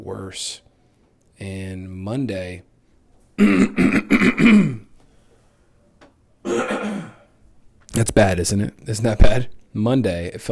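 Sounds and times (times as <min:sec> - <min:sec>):
speech: 0:00.2 - 0:00.6, 0:01.4 - 0:02.7, 0:03.4 - 0:04.8, 0:08.0 - 0:10.5
sick person coughing up phlegm: 0:03.4 - 0:04.9, 0:06.4 - 0:07.3.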